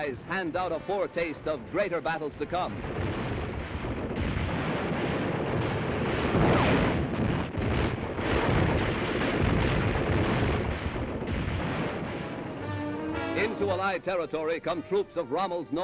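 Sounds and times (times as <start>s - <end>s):
speech: 0.0s - 3.2s, 13.6s - 15.8s
tank cannon fire in a desert battle: 2.6s - 12.7s
gunfire in a desert battle: 2.6s - 12.8s.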